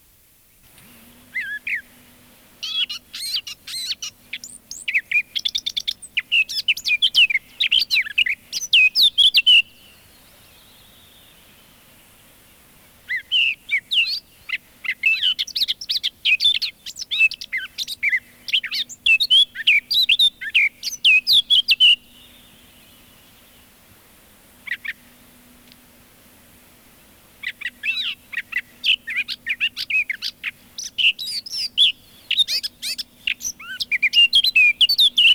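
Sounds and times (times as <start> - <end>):
faint low steady hum: 0.0 - 35.3
Eurasian blackcap song: 0.6 - 23.8, 24.6 - 25.9, 27.3 - 35.3.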